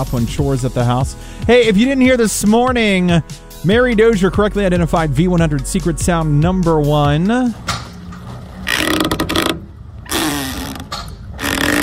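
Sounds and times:
speech: 0:00.0 - 0:07.7
dock lines tightening on a rocking boat: 0:06.4 - 0:11.8.

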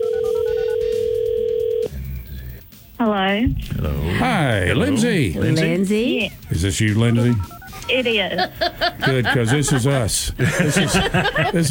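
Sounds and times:
droning ring tone of an outgoing phone call: 0:00.0 - 0:01.9, 0:07.1 - 0:08.3
speech: 0:03.0 - 0:11.6
laughter: 0:03.6 - 0:11.6.

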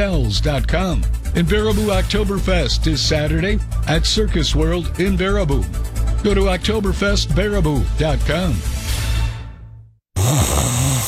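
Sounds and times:
speech: 0:00.0 - 0:08.8
person snoring: 0:10.2 - 0:11.0.

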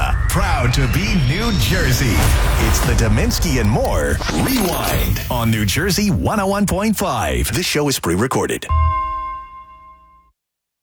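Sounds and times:
speech: 0:00.4 - 0:08.9
radio station time-check chime with a rich bell-like tone: 0:08.7 - 0:10.3.

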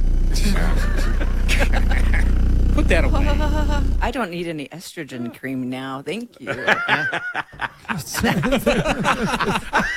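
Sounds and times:
voice imitating air buffeting inside a car with one window partly down: 0:00.2 - 0:04.0
laughter: 0:00.5 - 0:02.4, 0:06.4 - 0:09.9
speech: 0:02.9 - 0:09.9.

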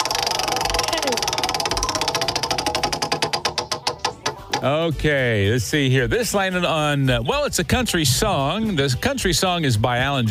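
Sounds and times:
prize wheel spinning during a trivia prize game: 0:00.0 - 0:04.7
speech: 0:04.6 - 0:10.2.

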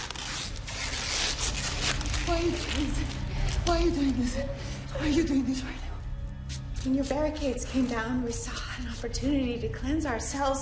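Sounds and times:
brown packing tape pulled and wrapped around a person's limbs: 0:00.0 - 0:03.8
speech: 0:03.7 - 0:05.8, 0:06.8 - 0:10.6.

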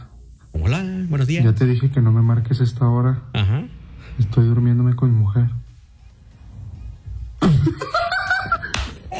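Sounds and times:
speech: 0:00.7 - 0:05.6
woman slapping a man across the face: 0:08.6 - 0:09.0.

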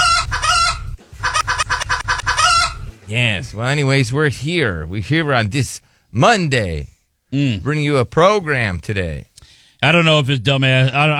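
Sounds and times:
rooster crowing: 0:00.0 - 0:03.0
speech: 0:03.1 - 0:11.1.

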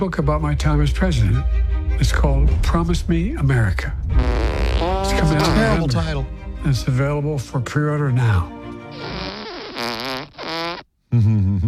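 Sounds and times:
speech: 0:00.0 - 0:04.4, 0:05.1 - 0:09.2, 0:11.1 - 0:11.6
long buzzy fart noises: 0:04.1 - 0:05.8, 0:08.9 - 0:10.9.

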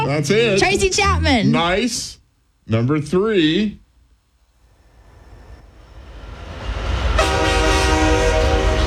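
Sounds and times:
speech: 0:00.2 - 0:03.8
train rumbling: 0:04.7 - 0:08.8
train horn: 0:06.7 - 0:08.8.

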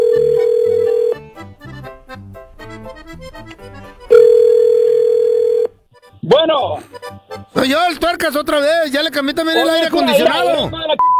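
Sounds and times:
telephone dial tone: 0:00.0 - 0:01.2, 0:04.1 - 0:05.7
speech: 0:07.6 - 0:11.0.

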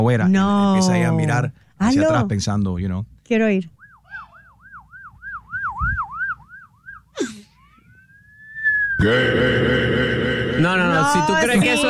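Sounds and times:
speech: 0:00.0 - 0:03.8, 0:09.0 - 0:09.5
person whistling an imitation of a police siren: 0:03.8 - 0:09.0
loud harsh blaring sound: 0:07.9 - 0:11.8.

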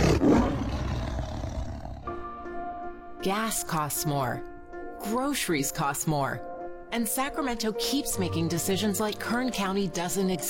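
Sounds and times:
deep rumbling lion roar: 0:00.0 - 0:02.2
speech: 0:03.2 - 0:10.4.

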